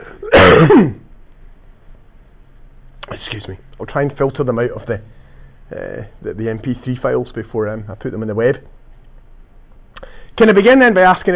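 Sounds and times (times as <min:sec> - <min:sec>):
harsh raspy cough: 0:00.0 - 0:01.1
speech: 0:00.6 - 0:01.0, 0:03.4 - 0:08.8, 0:10.0 - 0:11.3.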